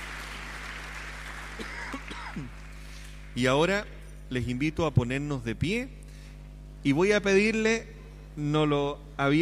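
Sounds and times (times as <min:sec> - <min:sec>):
audience clapping: 0:00.0 - 0:03.5
speech: 0:03.4 - 0:06.0, 0:06.8 - 0:09.4.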